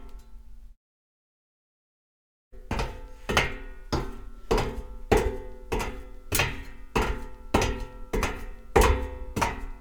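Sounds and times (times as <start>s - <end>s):
foley footsteps on a dampened metal grate: 2.6s - 9.7s.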